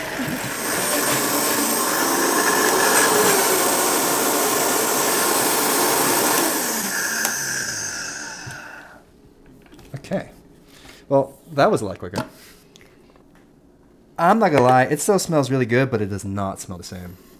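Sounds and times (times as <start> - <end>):
blender whirring at high speed blending shallots, garlic and coconut milk: 0.0 - 9.0
speech: 11.1 - 12.6, 14.2 - 17.3.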